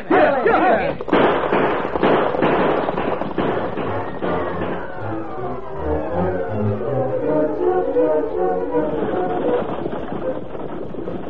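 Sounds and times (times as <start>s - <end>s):
scattered voices: 0.0s - 1.1s
busy rumbling commotion: 0.9s - 11.2s
rapid sharp gunshots: 1.0s - 5.2s.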